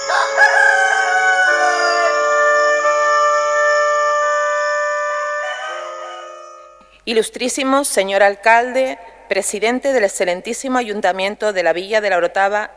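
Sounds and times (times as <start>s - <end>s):
rooster crowing: 0.0s - 6.9s
speech: 7.1s - 12.7s.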